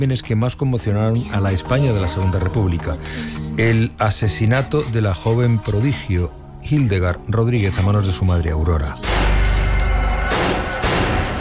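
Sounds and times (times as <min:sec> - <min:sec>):
speech: 0:00.0 - 0:09.1
gunshots: 0:09.0 - 0:11.4.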